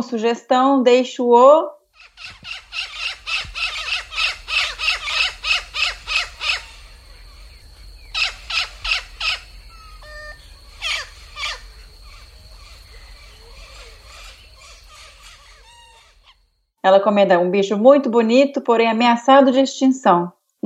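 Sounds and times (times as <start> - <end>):
speech: 0.0 - 2.9, 16.8 - 20.6
blacksmith tree frog calling in sharp metallic knocks: 2.0 - 16.5.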